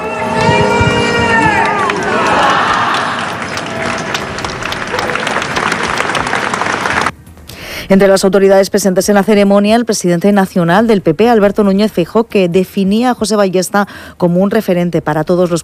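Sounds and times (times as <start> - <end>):
people calling out: 0.0 - 6.5
crowd applauding during a funeral procession in Murcia: 0.0 - 7.1
speech: 7.9 - 15.6.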